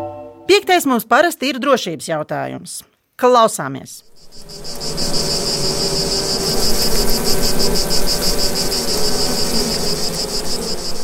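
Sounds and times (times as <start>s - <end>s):
speech: 0.6s - 5.3s
chorus of high pulsing cricket chirps on a hot summer day: 4.0s - 11.0s
horseflies droning on a hot summer day: 4.1s - 11.0s.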